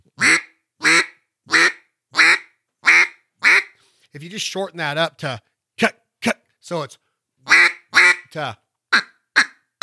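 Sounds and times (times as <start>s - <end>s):
duck call blown into a mallard hen quack: 0.2s - 3.8s, 7.5s - 8.3s, 8.9s - 9.8s
speech: 4.1s - 7.0s, 8.3s - 8.6s.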